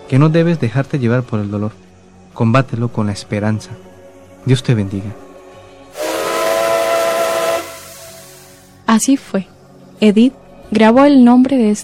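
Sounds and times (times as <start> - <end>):
speech: 0.1 - 5.2, 8.9 - 11.8
steam train whistle blast: 5.9 - 8.8.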